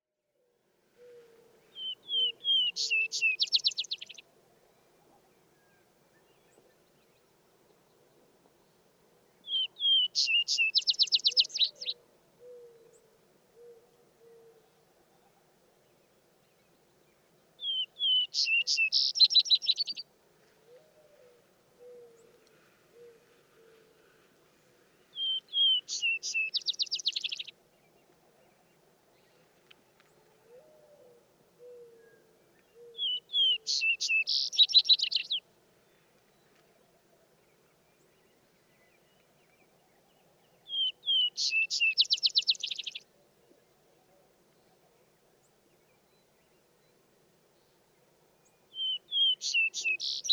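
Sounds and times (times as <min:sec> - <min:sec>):
vesper sparrow singing: 0:01.7 - 0:04.2, 0:09.4 - 0:12.0, 0:17.6 - 0:20.0, 0:25.1 - 0:29.4, 0:32.1 - 0:36.6, 0:37.9 - 0:43.1, 0:48.4 - 0:50.3.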